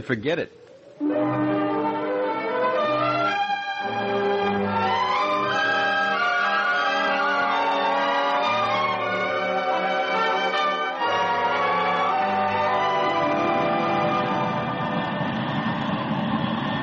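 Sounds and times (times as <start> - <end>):
speech: 0.0 - 1.5
jet fighter engine taxiing on a concrete taxi strip: 0.6 - 16.8.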